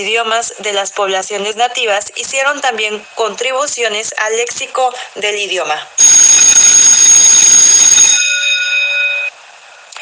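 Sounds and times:
speech: 0.0 - 6.4
electric bell ringing to signal the end: 6.0 - 9.3.

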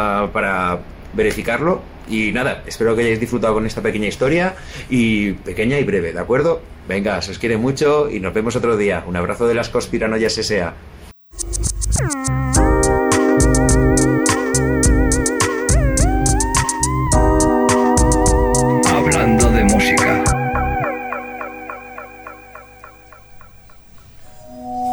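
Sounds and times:
speech: 0.0 - 11.6
glass harmonica playing a slow ethereal melody: 11.4 - 23.6
bright rippling run of bell-like notes: 18.6 - 24.8.

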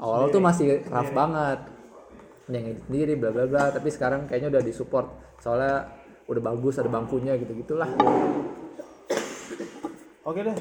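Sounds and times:
speech: 0.0 - 1.7, 2.5 - 8.6, 10.3 - 10.5
person coughing: 8.7 - 10.0.

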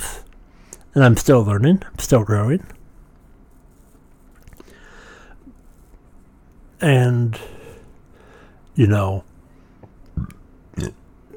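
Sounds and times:
speech: 1.0 - 2.8, 6.8 - 7.6, 8.8 - 9.3, 10.2 - 11.0
person burping into a microphone: 10.2 - 11.3.

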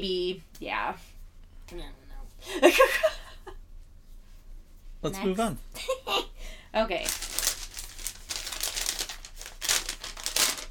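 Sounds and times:
speech: 0.0 - 3.2, 5.0 - 7.3
paper crumpling and crinkling: 7.0 - 10.6.

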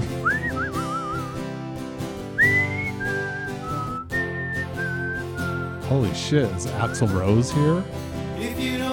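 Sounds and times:
person whistling a song melody: 0.2 - 1.6, 2.4 - 7.9
speech: 5.9 - 8.8.

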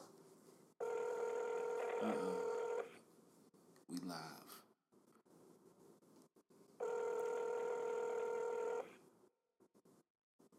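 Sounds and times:
electronic ringback tone over a phone line: 0.8 - 2.9, 6.8 - 8.9.

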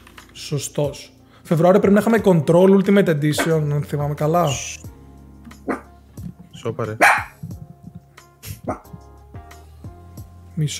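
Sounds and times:
speech: 0.4 - 4.9, 6.6 - 7.3, 10.6 - 10.7
dog barking: 5.6 - 5.9, 7.0 - 7.4, 8.5 - 9.0.

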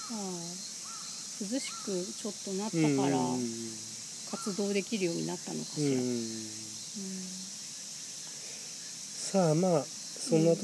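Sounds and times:
steady outdoor hiss: 0.0 - 10.6
speech: 0.1 - 0.7, 1.4 - 7.4, 9.3 - 10.6
crow cawing: 0.8 - 2.0.

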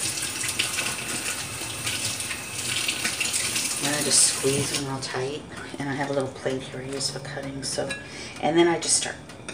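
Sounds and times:
cool tap water rinsing cilantro leaves: 0.0 - 5.4
speech: 4.0 - 9.3.

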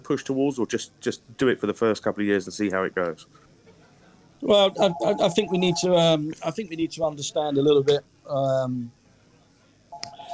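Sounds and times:
speech: 0.1 - 3.5, 4.4 - 9.0
quiet faint murmuring in a pub: 3.2 - 10.3
telephone electronic ring in a pub: 4.5 - 6.0, 10.0 - 10.3.

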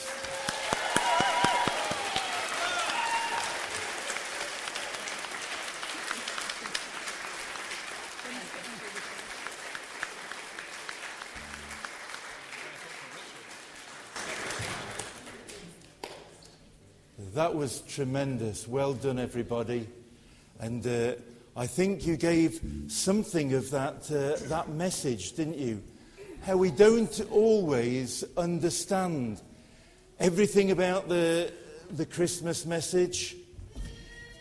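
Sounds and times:
large audience applauding: 0.0 - 16.0
speech: 17.4 - 20.0, 20.6 - 29.5, 30.2 - 33.4.

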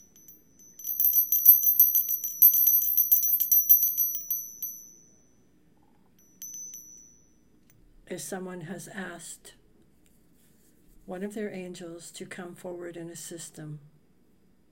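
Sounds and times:
high bright bell ringing in a continuous trill: 0.0 - 5.0, 6.3 - 7.2
speech: 8.1 - 9.6, 11.1 - 13.9.

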